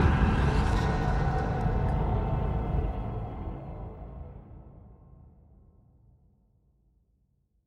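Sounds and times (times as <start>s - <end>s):
sci-fi impacts: 0.0s - 4.5s.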